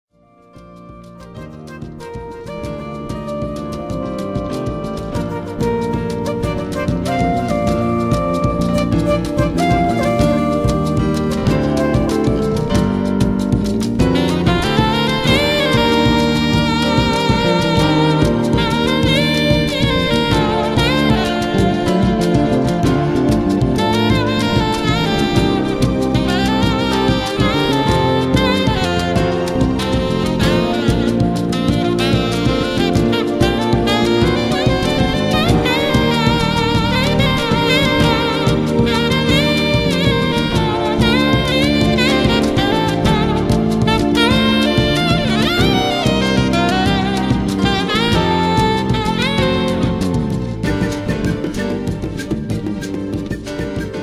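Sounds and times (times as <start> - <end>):
alto saxophone solo: 0.3 - 54.0.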